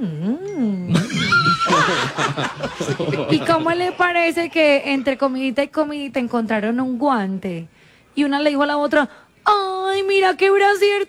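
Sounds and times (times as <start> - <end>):
person imitating cows mooing: 0.0 - 1.1
laughter: 0.9 - 5.3
speech: 1.9 - 11.0.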